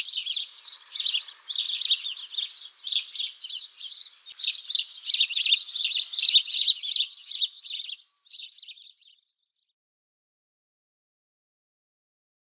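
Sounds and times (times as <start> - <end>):
sparrow chirping: 0.0 - 9.6.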